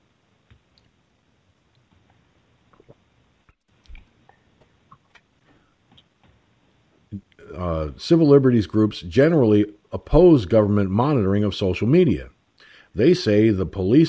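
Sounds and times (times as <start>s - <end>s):
person sipping coffee from a cup: 2.7s - 3.1s
speech: 7.6s - 12.4s, 13.0s - 14.0s.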